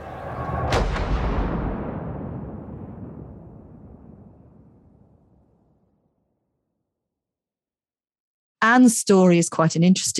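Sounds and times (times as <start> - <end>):
cannon firing from castle walls: 0.0 - 6.6
speech: 8.7 - 10.1.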